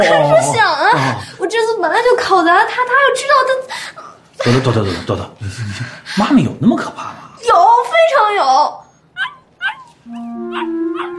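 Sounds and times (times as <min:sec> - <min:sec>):
speech: 0:00.0 - 0:08.8, 0:10.1 - 0:11.1
dog barking: 0:09.2 - 0:11.1.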